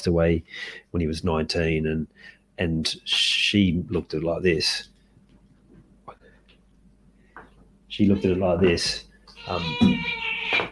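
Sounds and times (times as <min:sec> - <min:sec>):
speech: 0:00.0 - 0:04.9, 0:07.9 - 0:10.6
cat meowing: 0:08.0 - 0:08.7, 0:09.4 - 0:10.6.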